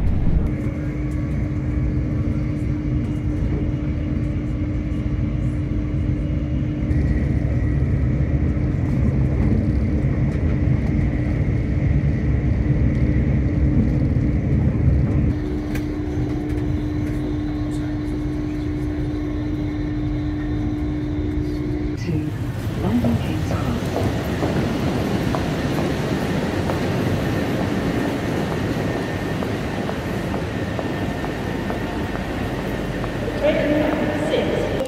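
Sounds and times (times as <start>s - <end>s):
train rushing past in a broad roaring whoosh: 0.0s - 0.9s, 21.8s - 34.8s
steady loud mechanical rumble with a faint whine: 0.0s - 34.8s.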